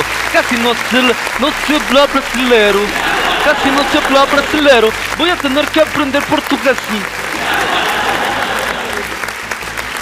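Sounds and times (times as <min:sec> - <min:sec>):
crowd applauding: 0:00.0 - 0:10.0
speech: 0:00.4 - 0:07.8
laughter: 0:01.4 - 0:05.8, 0:07.3 - 0:09.3.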